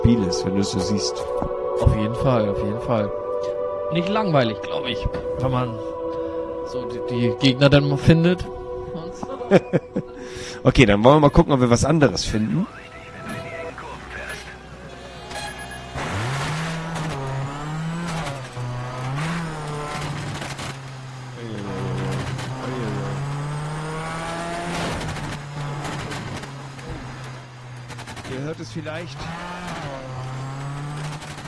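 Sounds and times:
speech: 0.0s - 6.0s, 6.7s - 8.6s, 9.2s - 12.9s
laughter: 9.2s - 10.6s
rally car engine revving in a rally racing video game demo on Xbox 360: 11.4s - 31.4s
rally car tire squeals in a video game: 12.9s - 31.4s.

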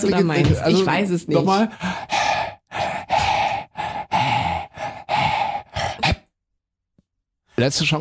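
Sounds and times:
speech: 0.0s - 2.1s, 7.6s - 7.9s
person panting rhythmically: 1.5s - 6.3s.

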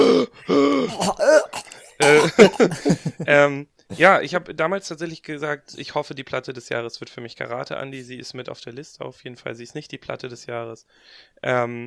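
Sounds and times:
loud heavy raspy breathing with voiced gasps: 0.0s - 3.1s
speech: 3.5s - 11.8s.

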